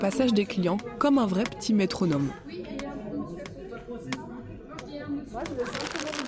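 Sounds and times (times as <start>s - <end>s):
speech: 0.0s - 2.6s
paper wrapping crumpled and torn: 5.6s - 6.2s.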